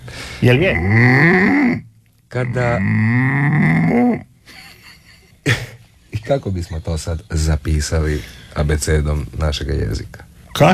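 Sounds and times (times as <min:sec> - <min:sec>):
speech: 0:00.4 - 0:04.3, 0:05.5 - 0:10.7
person imitating a cow mooing: 0:00.7 - 0:01.8, 0:02.4 - 0:04.3.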